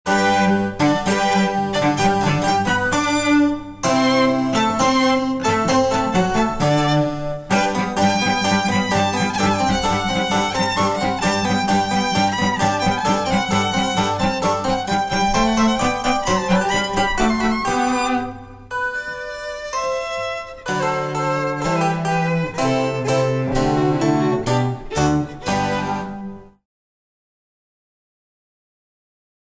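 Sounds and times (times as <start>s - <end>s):
cello: 0.1s - 26.6s
piano: 0.1s - 26.6s
violin: 0.1s - 26.6s.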